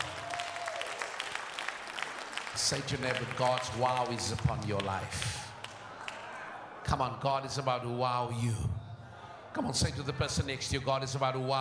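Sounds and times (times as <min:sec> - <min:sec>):
audience clapping hands: 0:00.0 - 0:06.4
speech: 0:02.6 - 0:05.5, 0:06.9 - 0:08.7, 0:09.5 - 0:11.5.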